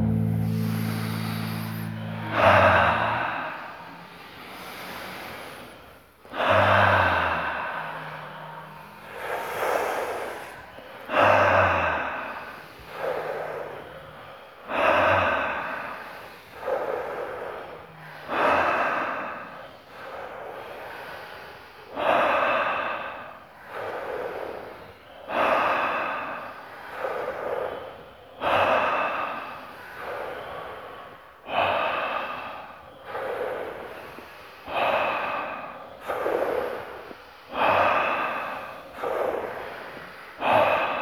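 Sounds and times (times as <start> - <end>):
slow deep breathing in and out: 0.0 - 41.0.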